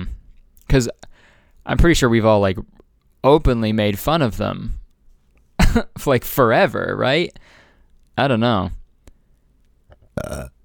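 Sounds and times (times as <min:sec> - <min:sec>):
speech: 0:00.7 - 0:04.8, 0:05.7 - 0:07.6, 0:08.2 - 0:08.8, 0:10.2 - 0:10.6
burp: 0:09.9 - 0:10.6.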